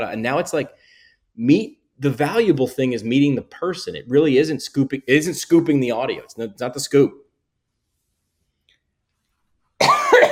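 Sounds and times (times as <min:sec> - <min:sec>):
speech: 0:00.0 - 0:07.2
person coughing: 0:09.8 - 0:10.3.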